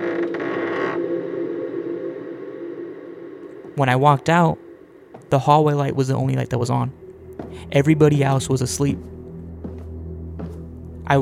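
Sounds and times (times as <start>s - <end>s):
door creaking open with strained hinge: 0.0s - 1.2s
speech: 3.8s - 4.6s, 5.3s - 9.2s.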